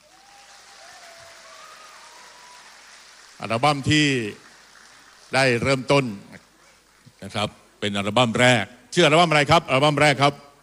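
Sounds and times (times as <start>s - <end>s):
crowd applauding: 0.0s - 7.5s
speech: 3.4s - 4.4s, 5.3s - 6.4s, 7.2s - 10.4s.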